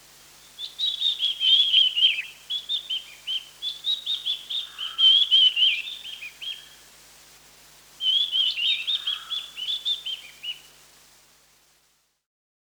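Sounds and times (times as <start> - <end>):
mountain wren-babbler giving high rapid chattering phrases: 0.5 - 6.7, 8.0 - 10.6.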